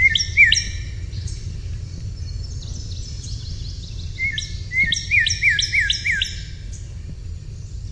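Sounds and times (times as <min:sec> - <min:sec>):
Northern cardinal singing slurred whistles: 0:00.0 - 0:01.4, 0:02.2 - 0:06.8.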